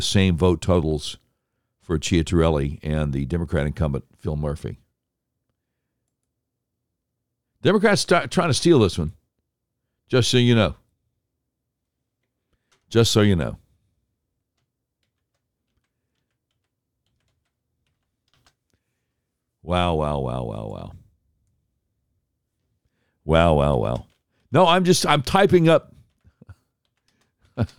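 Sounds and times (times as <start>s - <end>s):
speech: 0.0s - 1.2s, 1.9s - 4.8s, 7.6s - 9.2s, 10.1s - 10.8s, 12.9s - 13.6s, 19.6s - 21.0s, 23.3s - 26.0s, 27.6s - 27.7s
computer keyboard typing clicks: 14.6s - 18.7s, 26.0s - 27.7s.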